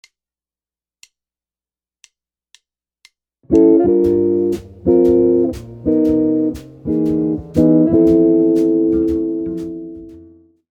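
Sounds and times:
jazz guitar chord licks: 3.5s - 10.5s.

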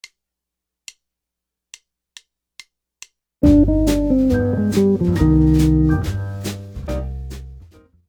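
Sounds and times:
musical licks: 3.4s - 6.8s.

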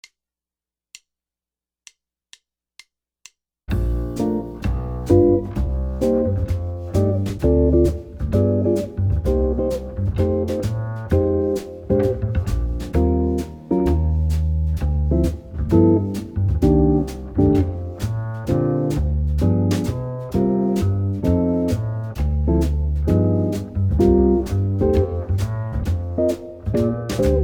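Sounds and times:
jazz guitar playing rhythm changes: 3.7s - 27.4s.

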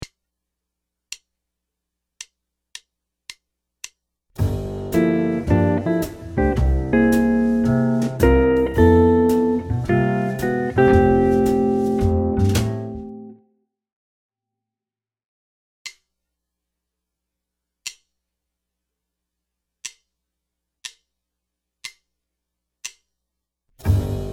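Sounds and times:
guitar ii V I chord solo lick: 4.9s - 13.4s.

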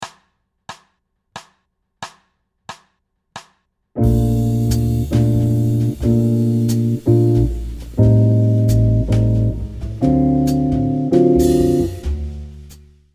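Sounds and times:
jazz waltz chords: 4.0s - 12.7s.

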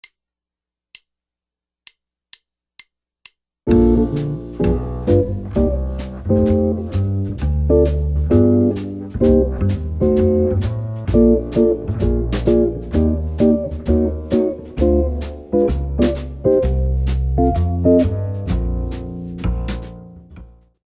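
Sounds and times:
jazz guitar playing: 3.7s - 20.5s.

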